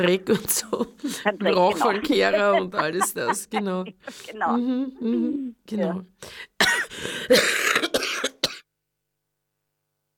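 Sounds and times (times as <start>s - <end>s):
speech: 0.0s - 8.0s
laughter: 0.3s - 5.4s
harsh raspy coughing fit: 1.0s - 4.6s, 6.3s - 8.7s.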